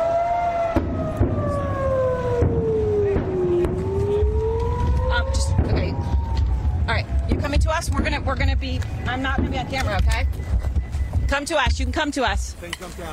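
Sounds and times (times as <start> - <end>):
rocket warning air raid siren wailing: 0.0 - 11.4
rumbling noisy outdoor background: 0.0 - 12.7
speech: 8.3 - 10.6, 11.3 - 13.1.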